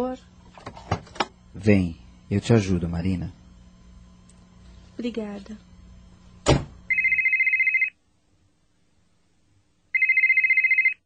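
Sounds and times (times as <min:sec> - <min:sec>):
speech: 0:00.0 - 0:00.3, 0:01.6 - 0:03.4, 0:05.0 - 0:05.7
brief thump: 0:06.4 - 0:06.8
electronic telephone ringing: 0:06.9 - 0:08.0, 0:09.9 - 0:11.0.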